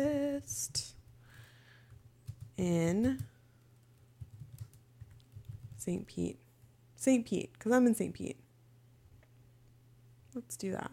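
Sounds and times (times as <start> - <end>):
low hum: 0.0 - 10.9
computer keyboard typing a search: 1.9 - 5.9
speech: 2.6 - 3.3, 5.8 - 6.4, 7.0 - 8.4, 10.4 - 10.9.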